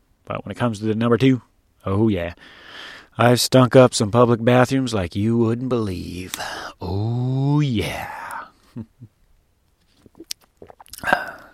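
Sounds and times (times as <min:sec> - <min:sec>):
speech: 0:00.3 - 0:08.2, 0:08.8 - 0:09.1
person drinking water: 0:09.9 - 0:11.5
small wet mouth clicks: 0:10.0 - 0:11.5.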